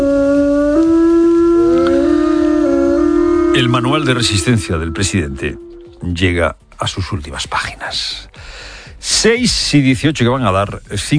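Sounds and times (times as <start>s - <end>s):
several wolves howling together: 0.0s - 6.3s
speech: 3.6s - 11.1s.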